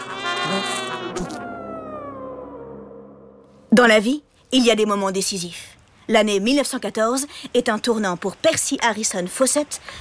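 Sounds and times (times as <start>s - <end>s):
mosquito buzzing in a nasal whine: 0.0s - 3.7s
speech: 3.8s - 9.9s.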